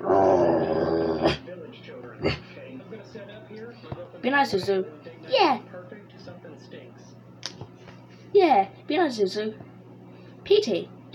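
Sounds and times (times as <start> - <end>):
small dog growling: 0.0 - 1.4
speech: 4.2 - 5.7, 8.4 - 9.6, 10.5 - 11.1.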